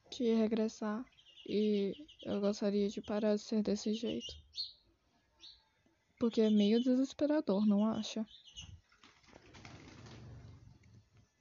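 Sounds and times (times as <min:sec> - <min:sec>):
speech: 0:00.2 - 0:04.8, 0:06.2 - 0:08.7
small bird landing with wings flapping: 0:08.6 - 0:11.2.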